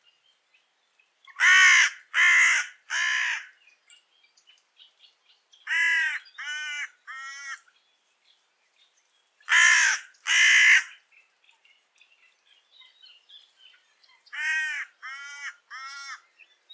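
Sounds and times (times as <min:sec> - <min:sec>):
Carrion crow Corvus corone cawing hoarsely: 0:01.4 - 0:03.5, 0:05.7 - 0:07.6, 0:09.5 - 0:10.9, 0:14.4 - 0:16.2.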